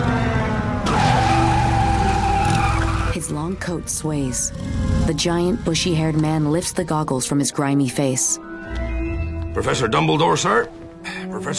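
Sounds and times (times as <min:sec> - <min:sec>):
motorcycle tire screeching in a skid on the street: 0:00.0 - 0:06.7
flying motorcycle engine rumbling: 0:00.0 - 0:07.4
speech: 0:03.5 - 0:08.9, 0:09.6 - 0:11.5.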